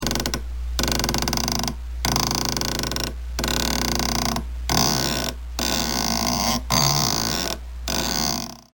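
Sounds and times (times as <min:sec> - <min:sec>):
creaky swing: 0:00.0 - 0:08.7.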